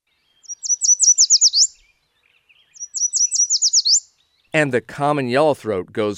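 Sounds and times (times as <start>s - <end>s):
Yellow Warbler song of high sweet notes: 0.0s - 4.8s
speech: 4.6s - 6.1s.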